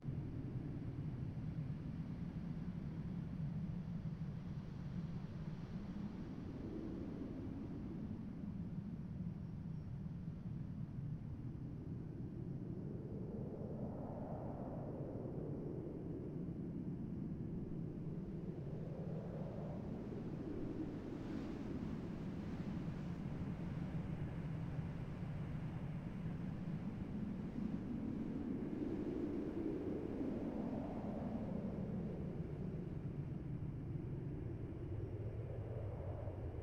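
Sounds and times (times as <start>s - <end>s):
ambient wind: 0.0s - 36.6s.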